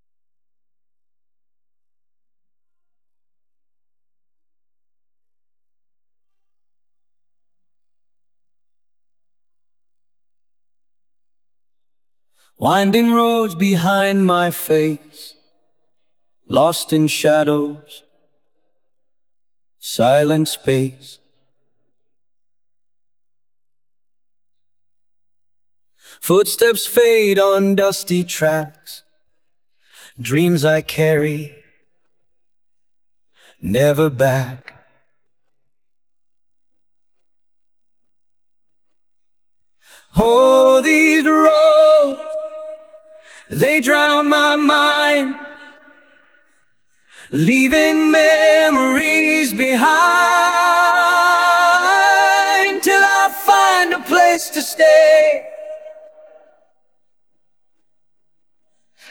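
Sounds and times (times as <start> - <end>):
vocal stem: 12.3 - 18.9, 19.8 - 22.1, 25.9 - 32.4, 33.3 - 35.6, 39.8 - 57.0, 58.6 - 59.0.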